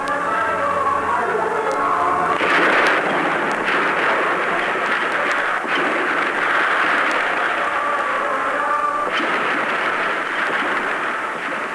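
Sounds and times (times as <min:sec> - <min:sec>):
rumble of chaotic noise: 0:00.0 - 0:11.7
sniper gunshots: 0:02.3 - 0:11.7.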